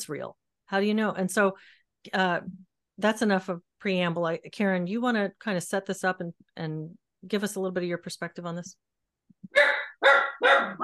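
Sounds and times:
speech: 0:00.0 - 0:10.8
dog barking: 0:09.5 - 0:10.8.

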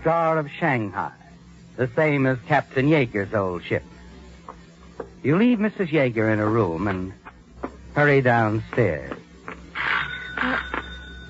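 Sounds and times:
speech: 0:00.0 - 0:01.2, 0:01.8 - 0:03.9, 0:05.2 - 0:07.2, 0:08.0 - 0:09.2
doorbell ringing with two chimes and a brief third tone: 0:10.0 - 0:11.2.

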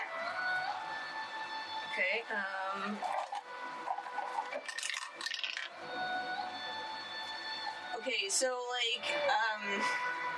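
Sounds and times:
faint steady hum: 0:00.0 - 0:10.3
speech: 0:02.0 - 0:03.2, 0:08.0 - 0:10.3
dice rattling and clattering: 0:04.6 - 0:05.7.

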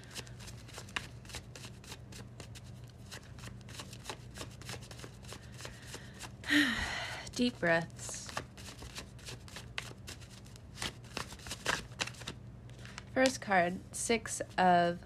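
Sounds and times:
tarot card deck being shuffled: 0:00.0 - 0:06.0, 0:08.1 - 0:13.4
speech: 0:06.5 - 0:08.0, 0:13.2 - 0:15.0.

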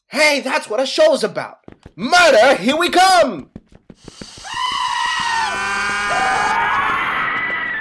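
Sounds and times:
speech: 0:00.1 - 0:04.2
sharp knocks: 0:01.6 - 0:07.8
at least four people screaming together: 0:04.4 - 0:07.8.

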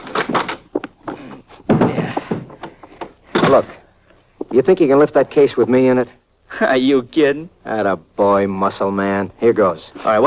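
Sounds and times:
door being handled and opened with rattling knocks and thumps: 0:01.7 - 0:02.7, 0:03.4 - 0:03.8
speech: 0:03.5 - 0:03.8, 0:04.5 - 0:10.2.

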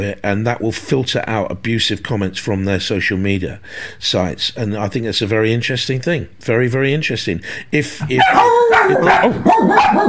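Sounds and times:
speech: 0:00.0 - 0:10.0
several dogs barking and howling together: 0:08.1 - 0:10.0.

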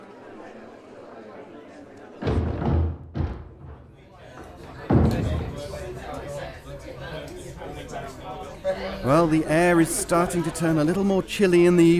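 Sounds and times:
crowd murmuring: 0:00.0 - 0:11.9
door shutting with a heavy thud: 0:02.2 - 0:06.1
solid knocks and bumps: 0:02.2 - 0:06.3
speech: 0:08.8 - 0:11.9.

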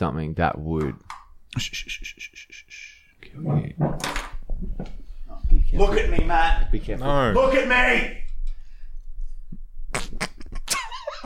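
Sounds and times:
speech: 0:00.0 - 0:05.0, 0:05.7 - 0:08.2
fart: 0:09.9 - 0:10.5.

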